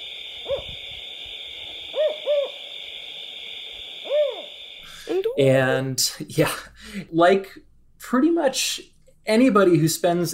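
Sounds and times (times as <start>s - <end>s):
California spotted owl hooting: 0.0s - 5.2s
steady high droning hum: 0.0s - 6.0s
speech: 5.4s - 10.3s.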